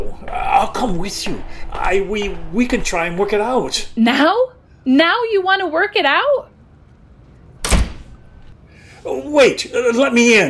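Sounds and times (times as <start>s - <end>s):
speech: 0.1s - 6.5s, 9.0s - 10.4s
train door sliding shut: 7.6s - 8.2s.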